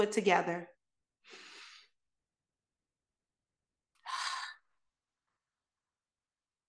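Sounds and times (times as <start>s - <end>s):
speech: 0.0s - 0.7s
deep breath in through nose: 1.2s - 2.0s, 4.0s - 4.7s
stronger breathy exhale like a sigh: 4.0s - 4.7s.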